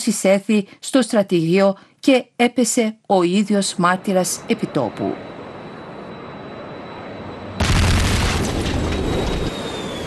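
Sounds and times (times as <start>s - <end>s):
speech: 0.0s - 5.3s
powerful explosion boom: 7.6s - 9.6s.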